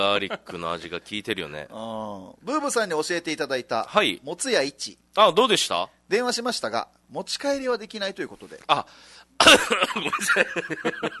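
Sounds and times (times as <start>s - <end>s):
speech: 0.0s - 11.1s
person coughing harshly: 9.4s - 10.0s
laughter: 9.5s - 11.1s.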